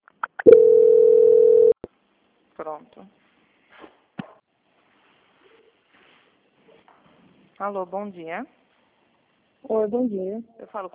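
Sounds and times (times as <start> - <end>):
telephone call transfer tone: 0.5 - 1.8
speech: 2.6 - 3.2, 7.6 - 8.6, 9.6 - 10.9.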